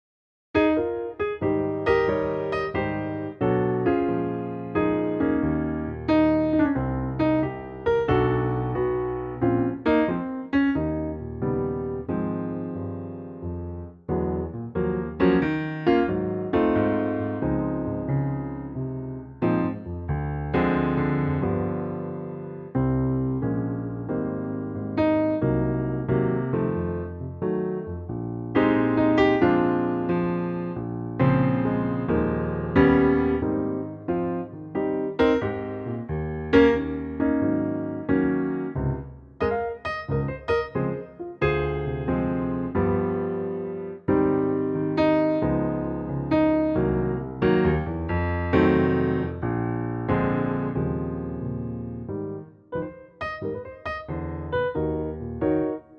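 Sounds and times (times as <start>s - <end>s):
solo piano arrangement of a standard in A flat: 0.6s - 55.9s.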